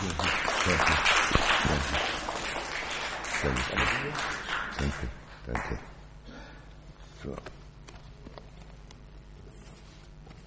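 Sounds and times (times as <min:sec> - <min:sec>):
crowd of many hands clapping: 0:00.0 - 0:05.8
speech: 0:03.4 - 0:06.0, 0:07.2 - 0:07.6.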